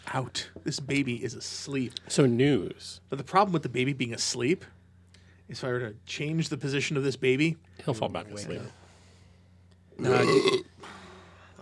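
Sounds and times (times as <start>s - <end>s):
low hum: 0.0s - 11.6s
speech: 0.1s - 4.8s, 5.5s - 8.8s, 10.0s - 10.7s
loud drawn-out burp: 10.0s - 10.8s.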